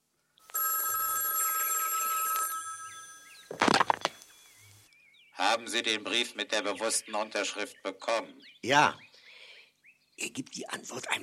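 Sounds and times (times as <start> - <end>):
old telephone bell ringing: 0.5 - 3.5
speech: 5.6 - 9.1, 10.2 - 11.2.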